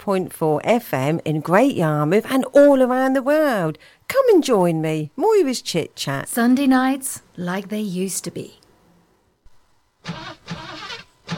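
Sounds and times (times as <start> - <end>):
speech: 0.0 - 8.6, 10.0 - 11.3
car engine starting and revving: 10.1 - 11.3.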